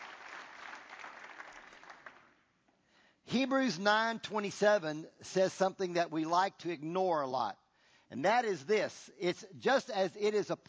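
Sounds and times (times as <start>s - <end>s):
audience applauding in a large room: 0.0s - 2.4s
speech: 3.3s - 10.6s.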